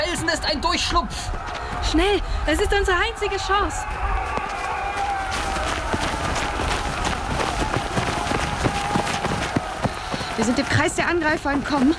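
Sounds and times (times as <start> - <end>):
speech: 0.2 - 4.2, 10.4 - 11.9
horses galloping at speed during a mounted escape: 3.8 - 11.9.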